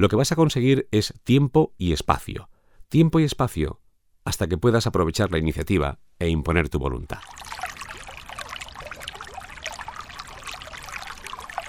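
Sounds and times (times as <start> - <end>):
speech: 0.0 - 7.7
spring water welling up from a spring and trickling: 7.1 - 11.6.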